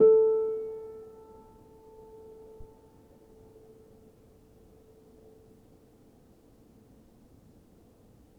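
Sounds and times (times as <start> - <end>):
upright piano: 0.0 - 2.8.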